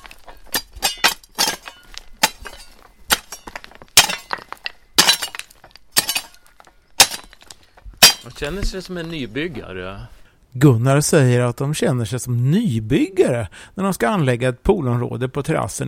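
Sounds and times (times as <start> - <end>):
hoe chopping into stony ground in a village: 0.0 - 9.3
speech: 8.2 - 15.8.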